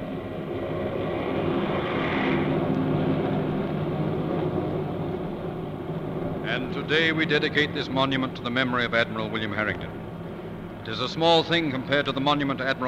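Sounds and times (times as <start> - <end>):
fleet of airplanes flying overhead in formation: 0.0 - 12.8
speech: 6.6 - 10.1, 10.8 - 12.8.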